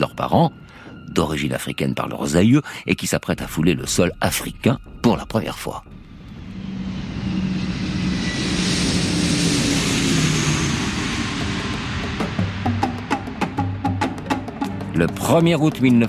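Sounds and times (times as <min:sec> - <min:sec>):
DC-8 jet airliner landing at an airport: 0:00.0 - 0:16.0
speech: 0:00.2 - 0:06.0, 0:15.0 - 0:16.0
low hum: 0:03.3 - 0:15.2.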